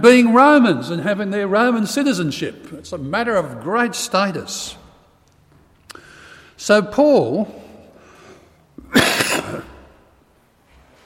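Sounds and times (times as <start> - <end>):
speech: 0.0 - 4.8, 6.6 - 7.6
person clearing a ticklish throat: 8.8 - 10.1.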